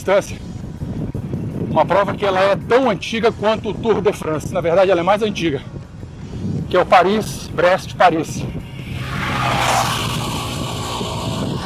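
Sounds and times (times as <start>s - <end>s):
speech: 0.0s - 0.5s, 1.8s - 5.8s, 6.7s - 8.6s
road and wind noise: 0.0s - 11.6s
motorcycle roaring past: 8.5s - 11.6s.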